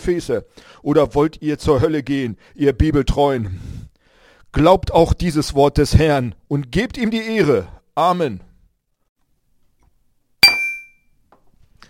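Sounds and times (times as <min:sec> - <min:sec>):
speech: 0:00.0 - 0:03.8, 0:04.5 - 0:08.5
glasses clinking in a toast: 0:10.4 - 0:11.0.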